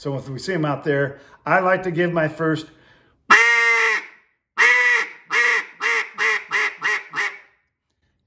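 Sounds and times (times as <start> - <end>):
speech: 0.0 - 2.8
duck call blown in a basic hen quack: 3.3 - 7.5.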